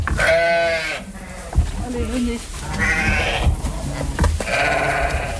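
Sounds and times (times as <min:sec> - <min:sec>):
several sheep of a flock bleating: 0:00.2 - 0:01.6, 0:02.6 - 0:05.3
faint murmur of the sheep flock: 0:00.2 - 0:05.3.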